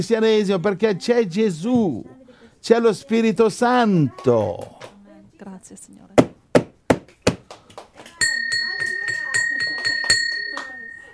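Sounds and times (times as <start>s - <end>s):
speech: 0.0s - 6.2s
bell rung as a wake-up call: 8.2s - 11.1s.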